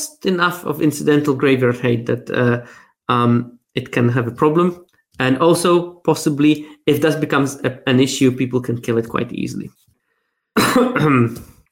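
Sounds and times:
speech: 0.2 - 9.8, 10.7 - 11.5
person coughing: 10.6 - 11.6.

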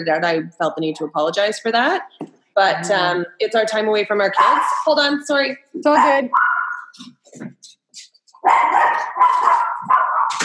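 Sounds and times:
speech: 0.0 - 6.4, 8.4 - 9.7
dog barking: 4.4 - 4.9, 6.0 - 6.9, 8.4 - 10.4.

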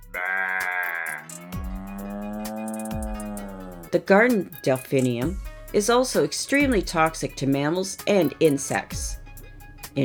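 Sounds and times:
sheep bleating: 0.0 - 3.9
speech: 3.9 - 9.2.

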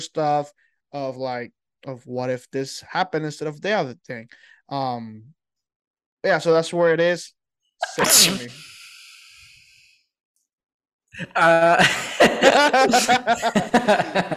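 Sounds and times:
speech: 0.0 - 5.4, 6.2 - 8.7, 11.2 - 14.3
person sneezing: 7.8 - 9.2
laughter: 11.2 - 14.3.

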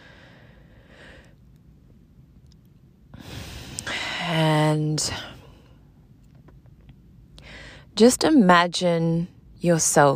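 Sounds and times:
deep slow breath drawn into the lower belly: 0.0 - 1.4, 3.1 - 4.2, 7.4 - 7.9
speech: 4.3 - 5.4, 8.0 - 10.1.

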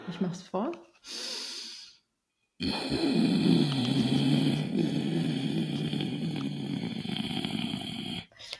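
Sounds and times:
speech: 0.1 - 1.3, 2.6 - 6.1
short nasal inhale: 1.0 - 8.5
forceful snorting nasal exhale with bubbling mucus as a voice exercise: 2.6 - 8.4.

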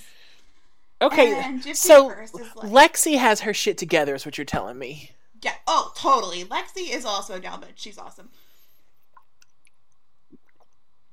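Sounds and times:
speech: 1.0 - 8.4
swig of wine being drunk: 9.1 - 11.1.

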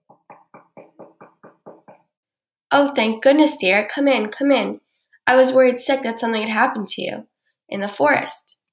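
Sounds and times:
light knocking on a door: 0.0 - 2.2
speech: 2.7 - 8.6.

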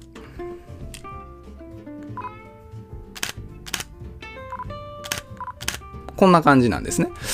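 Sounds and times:
Nikon Z50 mirrorless camera shutter clicks: 3.2 - 3.9, 5.0 - 5.8
speech: 6.2 - 7.3.

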